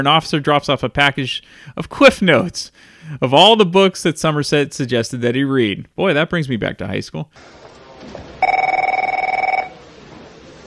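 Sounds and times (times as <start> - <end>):
speech: 0.0 - 8.2
telephone ring with rapid trilling bell: 8.4 - 9.8.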